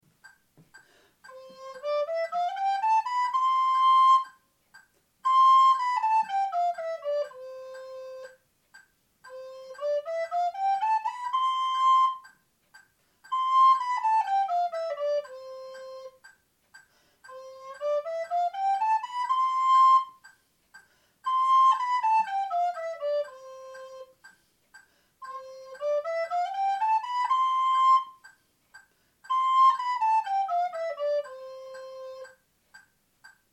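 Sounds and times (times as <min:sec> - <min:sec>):
flute playing a scale: 0:01.3 - 0:04.5, 0:05.2 - 0:08.4, 0:09.3 - 0:12.4, 0:13.3 - 0:16.2, 0:17.3 - 0:20.3, 0:21.2 - 0:24.2, 0:25.3 - 0:28.3, 0:29.3 - 0:32.4.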